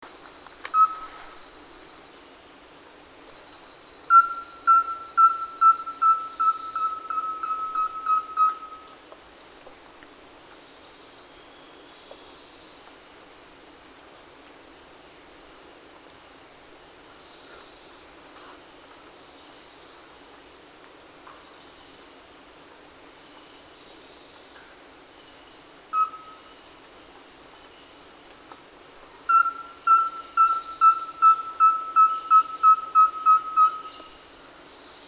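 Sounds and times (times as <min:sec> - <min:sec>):
Rusty-belted tapaculo: 0:00.7 - 0:01.4, 0:04.1 - 0:08.9, 0:29.3 - 0:34.2.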